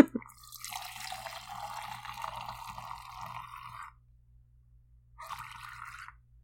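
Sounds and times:
white wine pouring from a bottle: 0:00.2 - 0:04.0, 0:05.2 - 0:06.2.

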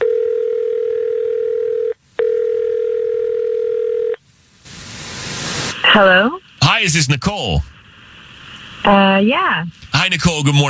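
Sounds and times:
electronic telephone tone during a phone call: 0:00.0 - 0:04.2
telephone line hiss: 0:04.6 - 0:10.6
speech: 0:06.0 - 0:07.8, 0:08.9 - 0:10.6.

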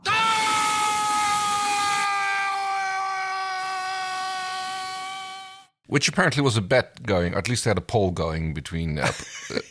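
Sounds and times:
man screaming in pain: 0:00.0 - 0:05.2
speech: 0:05.9 - 0:09.6.

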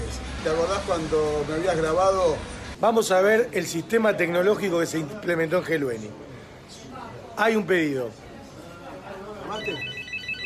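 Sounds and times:
speech: 0:00.4 - 0:06.4, 0:07.4 - 0:08.2, 0:09.5 - 0:09.9
telephone ringing with a high electronic trill: 0:09.4 - 0:10.4.

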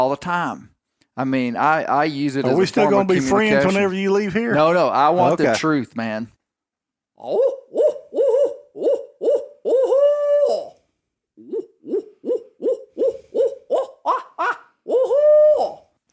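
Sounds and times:
speech: 0:00.1 - 0:06.4, 0:07.2 - 0:07.9
person imitating owl hoots: 0:07.2 - 0:10.8, 0:11.4 - 0:16.1.

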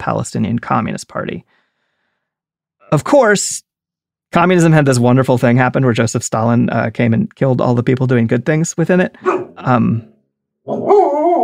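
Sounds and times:
speech: 0:00.0 - 0:01.6, 0:02.9 - 0:03.7, 0:04.3 - 0:11.2
pet dog barking: 0:09.2 - 0:09.6, 0:10.7 - 0:11.4.

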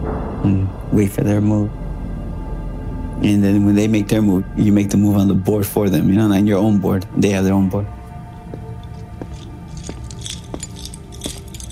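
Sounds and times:
speech: 0:00.4 - 0:01.8, 0:03.2 - 0:08.0
keys jangling: 0:08.8 - 0:11.7.

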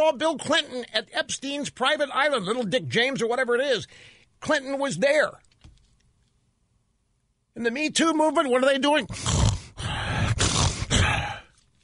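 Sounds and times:
speech: 0:00.0 - 0:05.5, 0:07.6 - 0:09.4
voice imitating snoring: 0:09.1 - 0:11.5.

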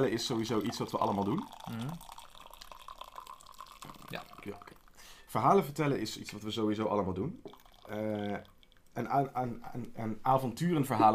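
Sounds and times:
speech: 0:00.0 - 0:02.1, 0:04.1 - 0:11.1
drink pouring into a glass: 0:00.0 - 0:05.0, 0:07.4 - 0:09.1.

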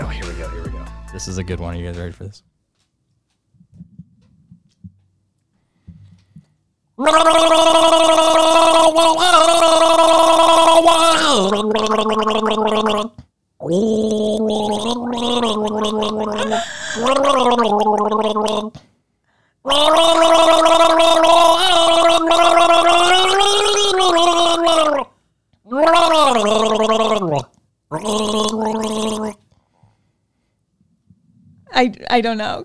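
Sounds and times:
speech: 0:01.2 - 0:02.5, 0:07.0 - 0:18.9, 0:19.6 - 0:23.0, 0:26.4 - 0:28.8, 0:31.8 - 0:32.6
person gargling water while humming a melody: 0:07.0 - 0:18.8, 0:19.7 - 0:25.1, 0:25.7 - 0:29.4.

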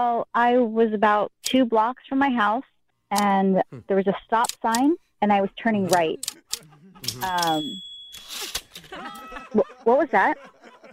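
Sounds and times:
speech: 0:00.0 - 0:07.8, 0:08.9 - 0:10.5
laughter: 0:05.7 - 0:07.6, 0:08.5 - 0:10.9
typewriter keys clattering: 0:07.0 - 0:08.9.

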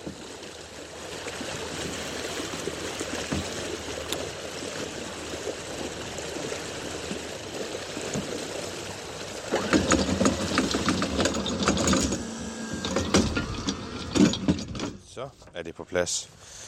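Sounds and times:
anchor splashing while rinsed in water: 0:00.0 - 0:14.3
water swishing: 0:00.0 - 0:15.2
steady boat engine hum: 0:00.0 - 0:16.6
boat anchor clanking and rattling as it is hauled up: 0:09.5 - 0:15.2
speech: 0:15.6 - 0:16.6.

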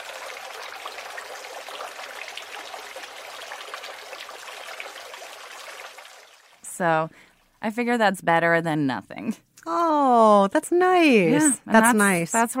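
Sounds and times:
small backyard fountain bubbling and trickling water: 0:00.0 - 0:06.7
speech: 0:06.8 - 0:12.5.

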